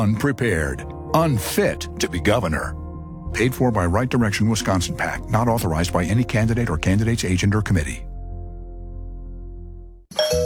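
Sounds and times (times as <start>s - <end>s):
low sustained musical tone: 0.0s - 7.4s, 8.1s - 10.0s
speech: 0.0s - 8.1s
two-tone ding-dong doorbell chime: 10.1s - 10.4s.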